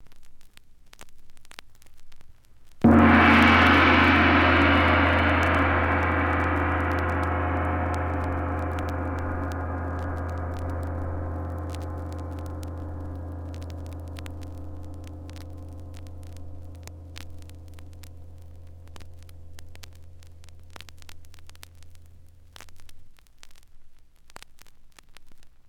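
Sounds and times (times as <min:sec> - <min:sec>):
Chinese gong: 0:02.8 - 0:22.8.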